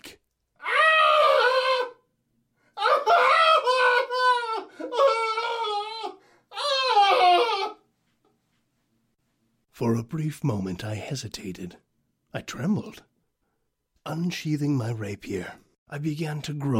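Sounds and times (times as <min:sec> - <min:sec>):
chained man screaming in stone catacombs: 0:00.6 - 0:02.0, 0:02.8 - 0:07.8
speech: 0:09.8 - 0:13.1, 0:14.0 - 0:16.7.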